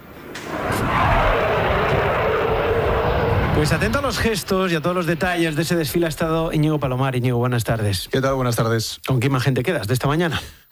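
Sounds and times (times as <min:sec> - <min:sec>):
jet roar from Eurofighter combat jets flying over a military parade: 0:00.0 - 0:06.9
speech: 0:03.6 - 0:10.7.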